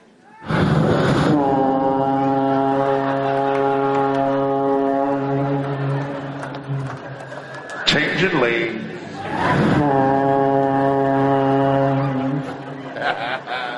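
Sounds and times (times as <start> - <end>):
deep car horn blast from a 1966 Cadillac Coupe de Ville: 1.2 - 7.2, 9.7 - 12.5
laughter: 2.4 - 4.3, 5.9 - 8.2, 9.0 - 10.0, 11.5 - 13.7
speech: 9.4 - 10.0.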